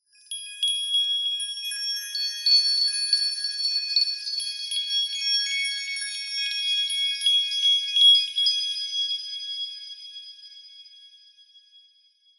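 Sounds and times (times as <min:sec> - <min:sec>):
lower pitched fairy dust twinkle sparkle bell tree: 0:00.1 - 0:10.0.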